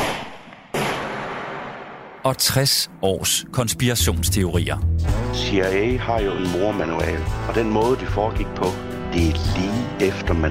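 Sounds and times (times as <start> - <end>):
gunshots: 0.0 - 2.2
speech: 2.2 - 10.4.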